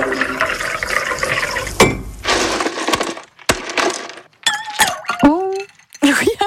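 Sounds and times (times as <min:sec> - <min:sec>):
fizzy liquid sloshing: 0:00.0 - 0:03.3
ice cubes dropping into a glass: 0:02.2 - 0:06.2.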